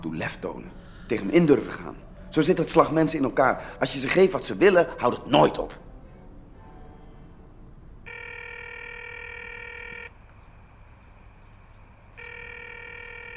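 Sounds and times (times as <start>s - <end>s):
speech: 0.0s - 5.8s
low hum: 0.0s - 13.3s
telephone ringing tone while a caller waits for an answer: 8.0s - 10.1s, 12.2s - 13.3s.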